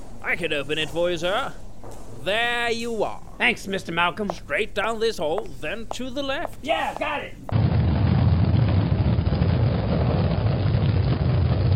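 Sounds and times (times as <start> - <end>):
speech: 0.3 - 7.5
powerful rocket main engine roaring: 7.5 - 11.7.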